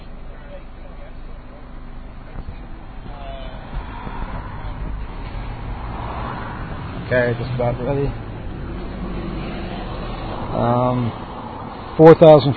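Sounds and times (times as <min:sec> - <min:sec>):
bus following behind: 0:00.0 - 0:12.5
steady street noise: 0:00.0 - 0:12.5
truck rumbling past: 0:01.6 - 0:12.5
speech: 0:07.1 - 0:08.2, 0:10.6 - 0:11.2, 0:12.0 - 0:12.5.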